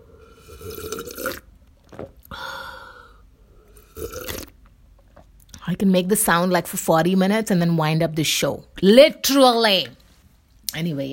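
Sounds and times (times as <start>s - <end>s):
slurping sips of hot tea with milk: 0.0s - 1.5s, 3.7s - 4.6s
speech: 5.7s - 10.0s, 10.8s - 11.1s.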